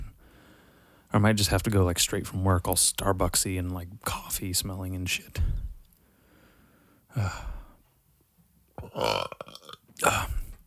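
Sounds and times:
speech: 0:01.2 - 0:05.7, 0:07.2 - 0:07.6, 0:09.0 - 0:09.6
loud burps: 0:08.8 - 0:10.4.

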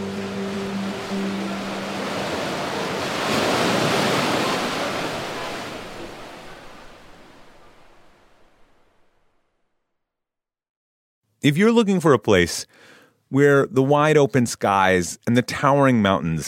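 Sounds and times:
Pacific Ocean waves washing into a sea cave: 0:00.0 - 0:09.3
speech: 0:11.4 - 0:16.4.

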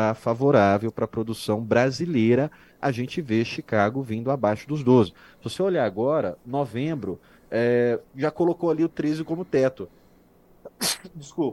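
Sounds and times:
speech: 0:00.0 - 0:10.0, 0:10.8 - 0:11.5
quick inhale before a sneeze: 0:02.5 - 0:02.8, 0:05.2 - 0:05.4
person sneezing: 0:10.7 - 0:11.2.

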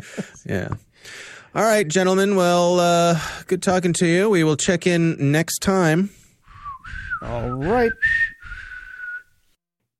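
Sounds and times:
speech: 0:00.0 - 0:06.2, 0:06.9 - 0:08.3
person whistling a TV theme tune with dry lips: 0:06.5 - 0:09.4.

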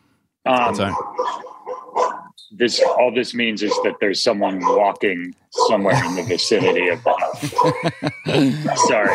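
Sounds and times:
speech: 0:00.5 - 0:01.4, 0:02.5 - 0:09.1
dogs barking at home: 0:00.5 - 0:09.1
laughter: 0:05.8 - 0:09.1.

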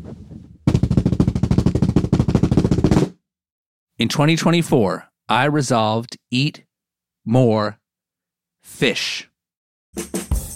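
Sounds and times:
rapid drum roll: 0:00.6 - 0:03.2
speech: 0:04.0 - 0:07.8, 0:08.6 - 0:09.3, 0:10.0 - 0:10.3.

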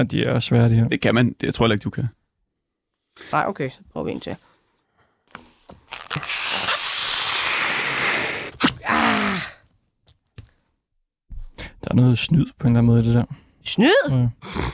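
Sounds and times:
speech: 0:00.0 - 0:02.2, 0:03.2 - 0:04.5, 0:11.9 - 0:14.7
person straining to blow up a stiff balloon: 0:06.0 - 0:09.5.

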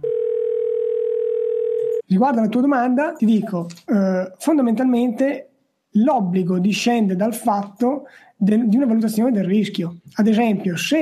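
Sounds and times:
telephone dial tone: 0:00.0 - 0:02.0
speech: 0:02.1 - 0:11.0.

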